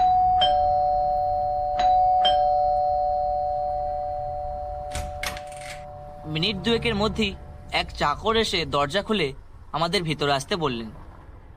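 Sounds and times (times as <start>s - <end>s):
calling bell ringing at a house door: 0.0s - 7.7s
steady tone: 0.0s - 11.5s
speech: 6.3s - 11.0s.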